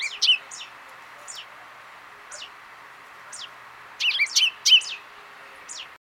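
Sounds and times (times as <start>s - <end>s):
Common chaffinch Fringilla coelebs calls: 0.0s - 1.6s, 2.2s - 2.6s, 3.2s - 5.9s
faint background hiss: 0.0s - 5.9s.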